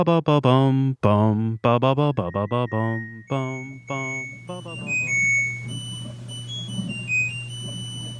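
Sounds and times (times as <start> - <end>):
speech: 0.0 - 6.0
constant low mechanical hum: 0.5 - 8.1
harsh high-pitched electronic appliance alarm tone: 1.6 - 8.1.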